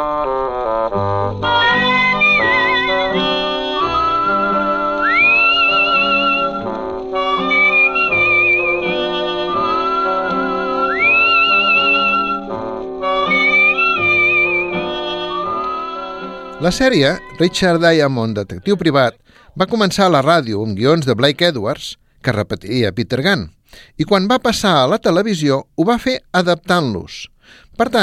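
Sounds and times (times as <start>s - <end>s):
full steady instrumental accompaniment: 0.0s - 18.8s
whistled opening theme melody of a private-detective series: 1.4s - 18.1s
speech: 16.6s - 28.0s.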